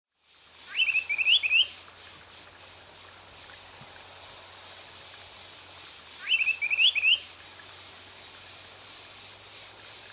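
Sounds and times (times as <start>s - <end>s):
Antilophia galeata calling: 0.6s - 1.8s, 6.2s - 7.3s.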